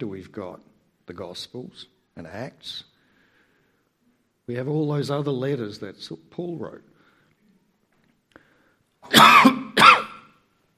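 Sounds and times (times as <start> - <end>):
speech: 0.0 - 2.9, 4.5 - 6.9
person with an irritated throat coughing and clearing throat: 9.1 - 10.4.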